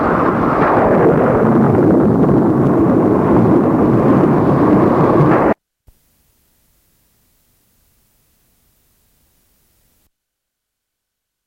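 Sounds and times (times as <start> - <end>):
rolling thunder in a thunderstorm: 0.0 - 5.6.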